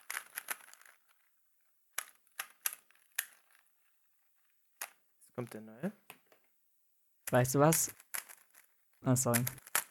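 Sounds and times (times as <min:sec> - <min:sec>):
plastic clacks of an old standard Rubik's Cube being turned: 0:00.0 - 0:01.3, 0:01.9 - 0:03.7, 0:04.8 - 0:05.6, 0:07.2 - 0:09.8
speech: 0:05.4 - 0:06.1, 0:07.3 - 0:08.0, 0:09.0 - 0:09.7.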